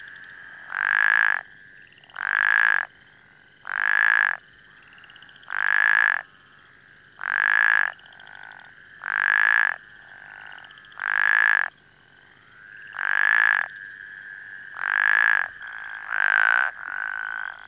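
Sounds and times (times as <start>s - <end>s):
quieter plains spadefoot croaks from a second caller: 0.0s - 17.6s
plains spadefoot rasping croaks: 0.5s - 1.4s, 2.0s - 2.9s, 3.6s - 4.4s, 5.1s - 6.2s, 7.2s - 11.7s, 12.8s - 13.8s, 14.7s - 17.6s.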